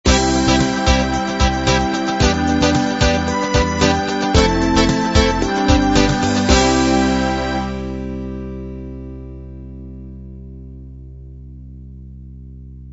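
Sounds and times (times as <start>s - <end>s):
pop ballad ending: 0.1s - 9.8s.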